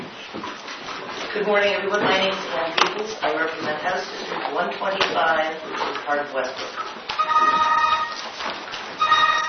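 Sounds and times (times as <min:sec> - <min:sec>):
rustling noise: 0:00.2 - 0:09.4
speech: 0:01.4 - 0:07.8
cell phone electronic ringtone during a legislative committee hearing: 0:07.2 - 0:08.4, 0:09.0 - 0:09.4.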